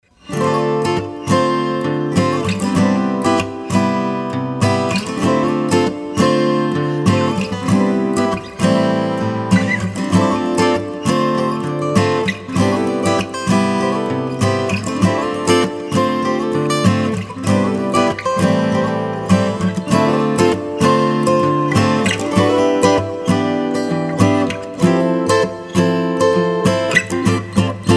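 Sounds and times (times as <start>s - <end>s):
acoustic guitar rhythms: 0.0s - 27.9s.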